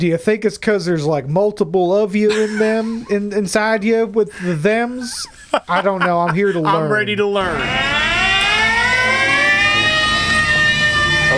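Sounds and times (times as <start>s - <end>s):
speech: 0.0s - 8.1s
laughter: 2.3s - 8.4s
siren wailing: 7.3s - 11.3s.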